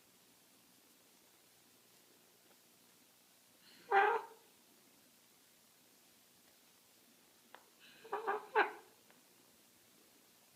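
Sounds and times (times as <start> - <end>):
hand-reared scarlet macaw chick squawking: 8.0 - 8.9.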